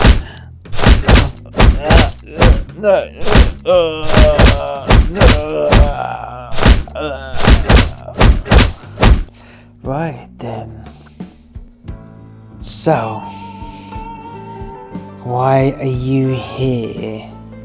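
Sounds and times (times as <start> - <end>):
pole thudding on a body: 0.0 - 9.3
person groaning and crying out: 1.0 - 8.8
speech: 2.3 - 7.4, 9.8 - 10.9, 12.6 - 13.4, 15.2 - 17.3.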